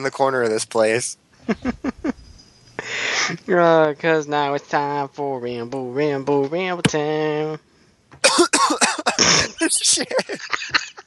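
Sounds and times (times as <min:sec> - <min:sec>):
speech: 0:00.0 - 0:01.8, 0:03.3 - 0:07.7, 0:09.2 - 0:10.9
laughter: 0:01.5 - 0:02.1, 0:09.0 - 0:11.0
person coughing harshly: 0:08.2 - 0:10.3.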